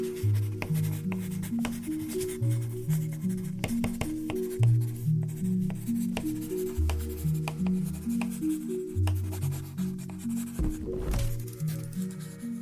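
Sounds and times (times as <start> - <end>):
low shifting musical tones: 0.0 - 12.5
pencil strokes scratching and tapping on paper on a desk: 0.0 - 12.5.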